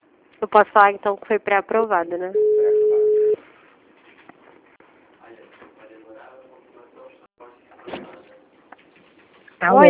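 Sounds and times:
speech: 0.4s - 2.5s
telephone busy tone beep after a dropped call: 2.4s - 3.4s.

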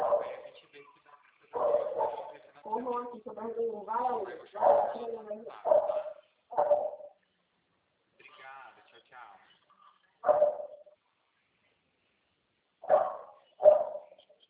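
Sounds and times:
dog barking: 0.0s - 0.5s, 1.5s - 2.4s, 4.6s - 7.2s, 10.2s - 11.0s, 12.8s - 14.2s
speech: 3.1s - 6.0s.

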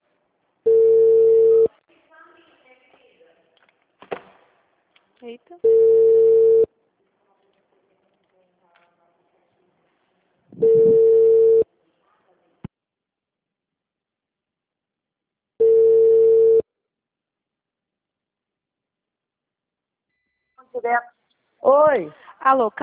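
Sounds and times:
telephone busy tone after a dropped phone call: 0.7s - 1.7s, 5.6s - 6.7s, 10.6s - 11.6s, 15.6s - 16.6s
speech: 5.3s - 6.2s, 20.8s - 22.8s.

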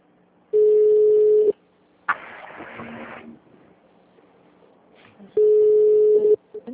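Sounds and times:
ringback tone of an outgoing phone call: 0.6s - 1.5s, 5.4s - 6.4s
short noise burst: 2.1s - 3.4s.

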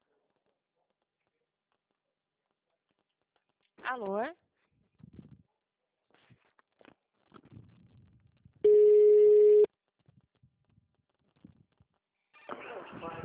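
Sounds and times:
speech: 3.9s - 4.4s
telephone signal tone after automated phone extension message: 8.7s - 9.7s.

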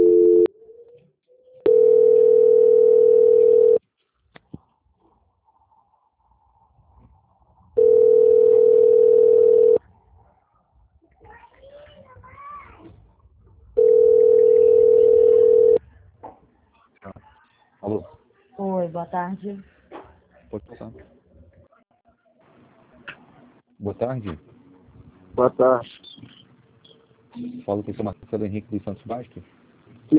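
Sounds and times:
faint sounds on a telephone line: 0.0s - 0.5s, 1.6s - 3.8s, 7.8s - 9.8s, 13.8s - 15.8s
speech: 19.1s - 19.8s, 20.6s - 21.2s, 23.9s - 24.5s, 25.4s - 26.0s, 27.4s - 30.1s.

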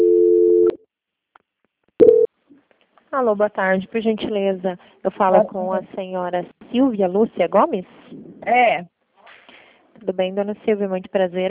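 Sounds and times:
telephone tone while a call is transferred: 0.0s - 0.8s, 2.0s - 2.3s
speech: 3.1s - 8.9s, 10.0s - 11.4s.

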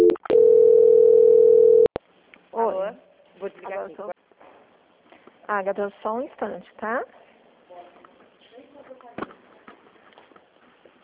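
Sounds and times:
telephone ringing tone during a call transfer: 0.0s - 1.9s
speech: 5.5s - 7.2s.

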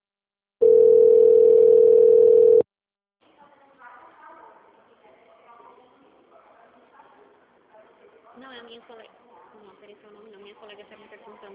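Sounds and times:
telephone dial tone: 0.6s - 2.6s.

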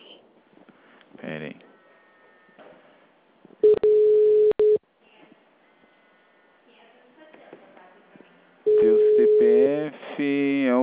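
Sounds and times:
electronic phone ring for an incoming call: 3.6s - 4.8s, 8.7s - 9.6s.

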